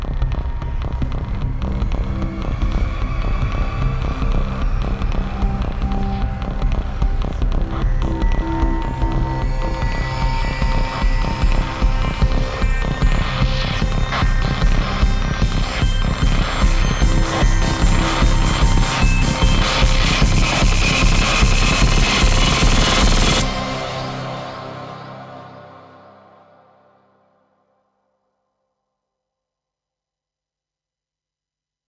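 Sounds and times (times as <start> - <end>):
throbbing sound: 0.1 - 25.7.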